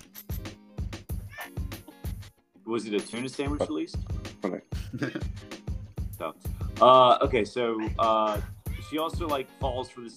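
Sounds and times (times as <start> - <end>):
cat meowing: 1.3 - 1.6, 7.8 - 9.0
speech: 2.7 - 5.4, 6.2 - 10.1.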